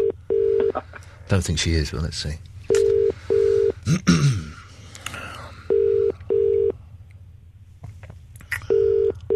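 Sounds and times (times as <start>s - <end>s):
outgoing phone call ringing tones: 0.0s - 0.8s, 2.7s - 3.8s, 5.7s - 6.8s, 8.7s - 9.3s
low hum: 0.0s - 9.3s
speech: 0.8s - 2.5s, 3.9s - 4.4s.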